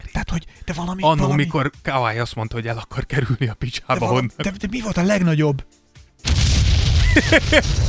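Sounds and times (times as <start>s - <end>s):
speech: 0.3s - 6.4s, 7.2s - 7.8s
loud explosion with deep sustained rumble: 6.2s - 7.8s
laughter: 7.0s - 7.8s.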